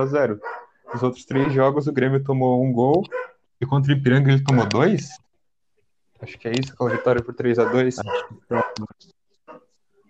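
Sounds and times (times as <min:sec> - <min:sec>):
speech: 0:00.0 - 0:05.2, 0:06.2 - 0:09.2
dog barking: 0:00.4 - 0:01.6, 0:03.1 - 0:03.4, 0:06.8 - 0:08.9.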